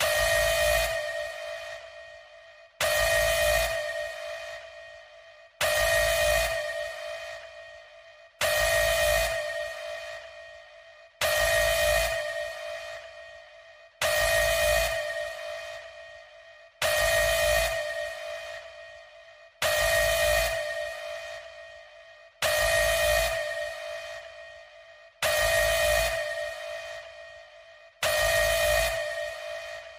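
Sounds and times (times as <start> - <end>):
Malaysian emergency alert sirens: 0.0 - 2.2, 2.8 - 4.7, 5.6 - 7.6, 8.4 - 10.3, 11.2 - 13.2, 14.0 - 16.0, 16.8 - 18.6, 19.6 - 21.6, 22.4 - 24.4, 25.2 - 27.1, 28.0 - 29.9.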